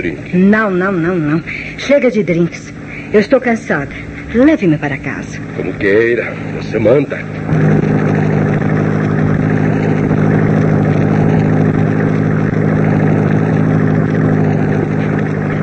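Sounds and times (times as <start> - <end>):
speech: 0.0 - 7.8
car engine running: 0.0 - 15.6.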